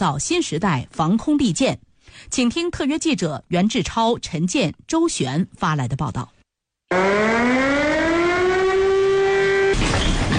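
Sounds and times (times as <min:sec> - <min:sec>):
speech: 0:00.0 - 0:07.5
military alert siren of a Chinese Army air-defense brigade wailing: 0:06.9 - 0:09.8.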